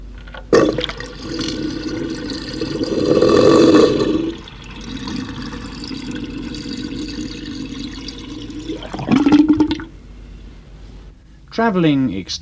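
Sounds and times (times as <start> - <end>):
water draining from a wash basin with suction: 0.5 - 9.9
speech: 11.6 - 12.4.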